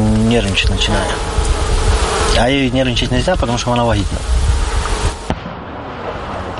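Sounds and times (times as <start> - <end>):
steady wind-like outdoor rumble: 0.0 - 6.5
speech: 0.3 - 1.6, 2.3 - 4.5
artillery cannon fire over military positions: 5.3 - 6.3.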